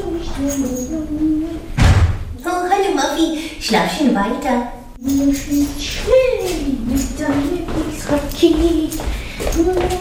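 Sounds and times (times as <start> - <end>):
speech: 0.4 - 1.7, 2.4 - 9.9
door clunk: 1.8 - 2.3.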